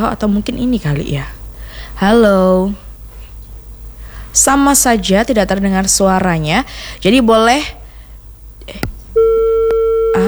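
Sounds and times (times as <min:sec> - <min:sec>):
speech: 0:00.0 - 0:01.4, 0:02.0 - 0:02.8, 0:04.4 - 0:07.8
steady electronic telephone tone after a call is disconnected: 0:09.2 - 0:10.2.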